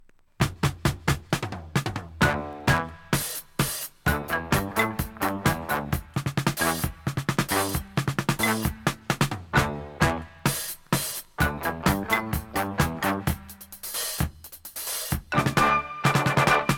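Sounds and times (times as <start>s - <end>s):
groove: 0.0s - 16.7s.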